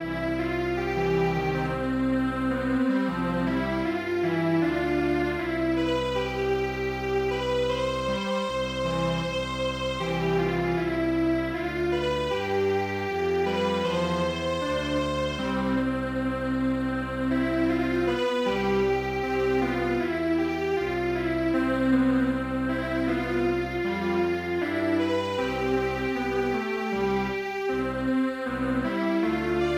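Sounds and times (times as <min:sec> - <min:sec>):
traditional string quartet piece in MIDI: 0:00.0 - 0:29.7.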